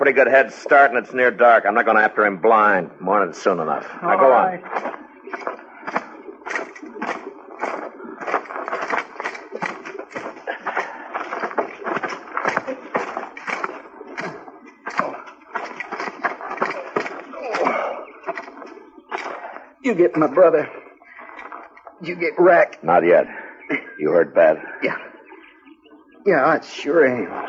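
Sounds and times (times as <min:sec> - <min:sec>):
speech: 0:00.1 - 0:05.5, 0:19.9 - 0:20.8, 0:22.0 - 0:23.4, 0:24.0 - 0:25.0, 0:26.2 - 0:27.4
several horses' hooves clip-clopping as they approach: 0:04.6 - 0:20.5.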